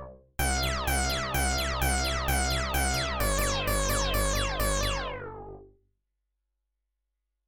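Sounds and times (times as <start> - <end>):
System-1 and SH-5 synthesizers playing in sync, right and left: 0.5 - 5.6.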